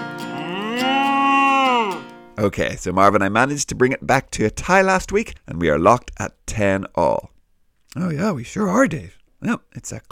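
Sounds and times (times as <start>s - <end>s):
cow mooing: 0.2s - 2.1s
speech: 2.4s - 7.3s, 7.9s - 10.1s.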